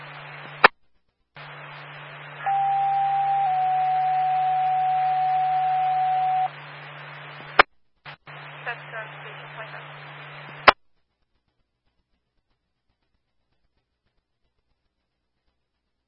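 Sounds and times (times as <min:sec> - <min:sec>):
radio test tone: 0:01.4 - 0:07.6, 0:08.3 - 0:10.8.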